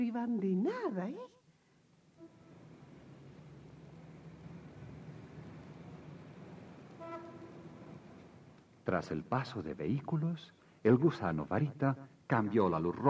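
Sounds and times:
speech: 0.0 - 1.4, 8.9 - 13.0
tram rumbling past: 2.3 - 8.6
tram horn toots: 6.9 - 8.3.

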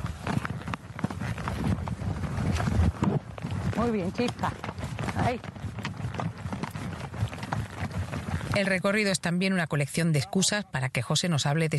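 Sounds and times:
wind noise on the microphone: 0.0 - 8.6
horse trotting under a rider: 0.0 - 11.7
speech: 3.8 - 4.6, 5.2 - 5.5, 8.6 - 11.7.

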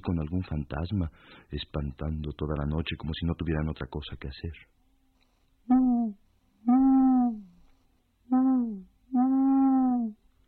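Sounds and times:
speech: 0.0 - 4.8
owl hooting: 5.7 - 7.6, 8.3 - 10.2.

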